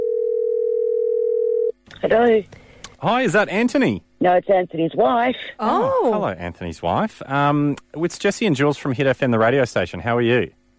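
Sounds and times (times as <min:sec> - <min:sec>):
telephone dial tone as a phone call is placed: 0:00.0 - 0:01.7
speech: 0:02.0 - 0:10.6.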